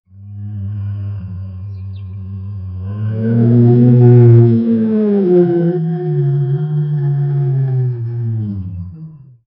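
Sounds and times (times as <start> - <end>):
Tyrannosaurus rex roaring: 0.2 - 9.2.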